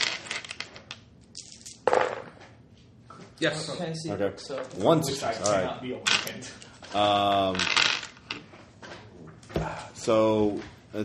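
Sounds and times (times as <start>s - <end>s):
dice clattering and tumbling across a hard tabletop: 0.0s - 2.4s, 5.4s - 6.3s, 7.0s - 8.5s
speech: 3.4s - 8.0s, 10.0s - 11.0s.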